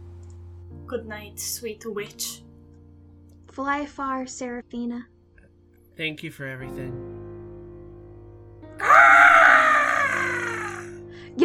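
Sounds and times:
speech: 0.9s - 2.5s, 3.6s - 5.1s, 6.0s - 7.2s
person imitating a fox's scream: 8.8s - 11.0s.

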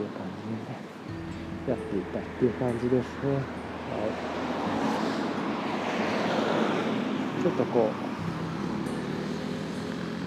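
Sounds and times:
passing road traffic rumble: 1.0s - 10.2s
speech: 1.6s - 4.6s, 7.4s - 8.1s.

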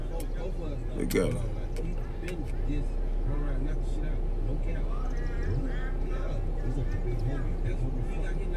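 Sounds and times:
car pulling up with engine rumbling: 0.0s - 8.5s
speech: 1.1s - 8.5s.

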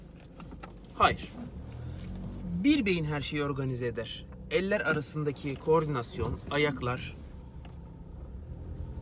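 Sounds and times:
car engine running while driving: 0.0s - 8.9s
droning road noise: 0.0s - 8.9s
speech: 1.0s - 1.4s, 2.6s - 7.2s.

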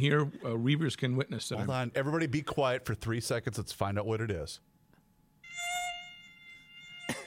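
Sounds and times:
speech: 0.0s - 4.7s
mosquito whining indoors: 5.4s - 7.2s.

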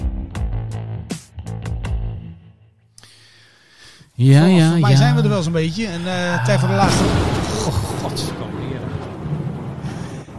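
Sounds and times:
speech: 4.2s - 9.0s
deep rolling thunder rumble sound effect: 6.3s - 10.3s.

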